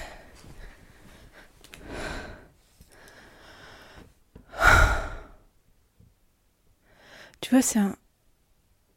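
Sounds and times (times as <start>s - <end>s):
deep belly breaths while settling down to rest at home: 0.0s - 5.5s, 6.8s - 7.4s
speech: 7.4s - 8.0s.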